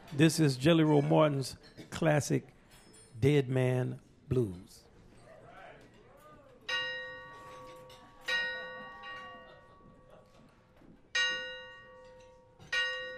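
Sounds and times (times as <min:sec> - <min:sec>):
speech: 0:00.1 - 0:02.6, 0:03.2 - 0:04.8
400-pound bell struck on stage tolling: 0:06.7 - 0:10.0, 0:11.2 - 0:13.1.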